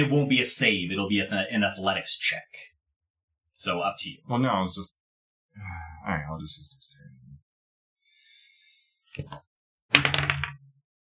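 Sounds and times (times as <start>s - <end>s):
speech: 0.0s - 2.8s, 3.6s - 5.0s, 5.6s - 7.2s, 9.2s - 9.5s
dice clattering against a hard object in a tabletop game: 9.9s - 10.6s.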